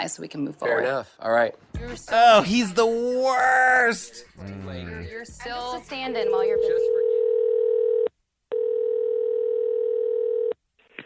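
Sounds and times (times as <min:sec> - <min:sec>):
speech: 0:00.0 - 0:07.0
telephone ringback tone: 0:06.5 - 0:10.6.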